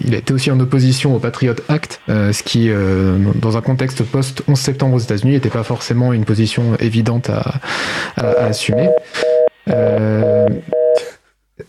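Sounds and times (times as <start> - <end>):
speech: 0.1 - 10.8
electronic telephone beeps from a phone line connection problem: 8.2 - 11.1.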